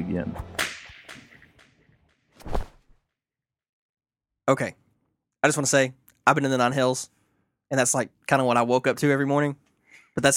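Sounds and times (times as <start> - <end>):
speech: 0.1 - 0.6, 4.5 - 4.8, 5.4 - 9.6, 10.2 - 10.3
whip crack: 0.6 - 1.7, 2.4 - 2.8
whip swishing whooshes: 2.4 - 3.0.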